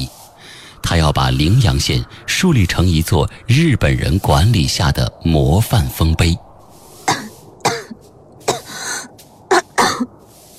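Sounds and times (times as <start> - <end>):
speech: 0.9 - 6.4
dry coughs from another room: 7.1 - 10.1.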